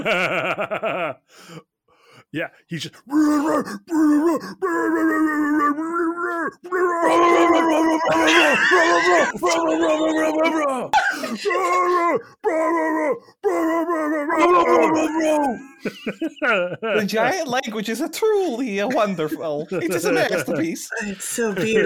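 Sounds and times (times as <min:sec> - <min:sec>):
laughter: 0:00.0 - 0:01.2, 0:06.9 - 0:12.2, 0:14.4 - 0:17.6, 0:18.3 - 0:21.8
speech: 0:00.0 - 0:01.7, 0:02.3 - 0:21.8
man screaming nonsense syllables in mock screamo heavy metal style: 0:03.0 - 0:15.8.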